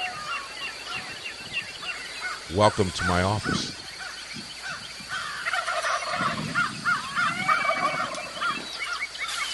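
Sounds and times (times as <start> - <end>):
steady low rush of wind: 0.0 - 9.5
speech: 2.5 - 3.8
Rio Grande wild turkey gobbling: 5.4 - 9.4.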